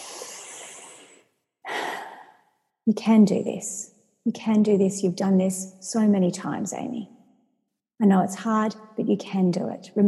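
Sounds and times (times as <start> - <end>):
deep breath: 0.0 - 2.4
speech: 2.9 - 7.2, 8.0 - 10.0.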